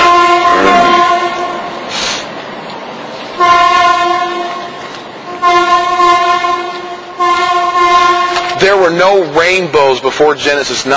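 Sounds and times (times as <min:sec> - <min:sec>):
train horn blasts: 0:00.0 - 0:02.0, 0:03.4 - 0:08.9
train rolling by: 0:00.0 - 0:10.9
speech: 0:08.9 - 0:10.9.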